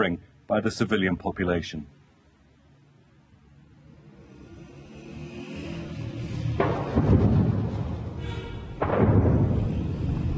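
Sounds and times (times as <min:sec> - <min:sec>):
speech: 0:00.0 - 0:02.0
distant artillery booms: 0:06.6 - 0:10.3.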